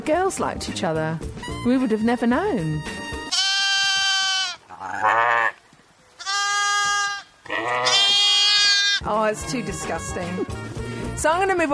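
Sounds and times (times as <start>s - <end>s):
speech: 0.0s - 3.0s, 9.0s - 11.7s
rams bleating while ramming: 3.2s - 5.6s, 6.2s - 9.1s.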